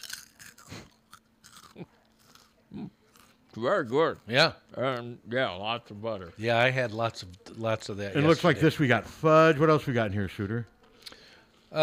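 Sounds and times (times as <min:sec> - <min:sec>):
person biting and chewing a crunchy cookie: 0:00.0 - 0:02.5
speech: 0:03.6 - 0:10.8.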